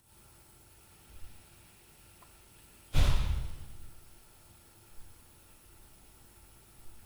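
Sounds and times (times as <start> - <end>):
door at night: 3.0 - 3.9.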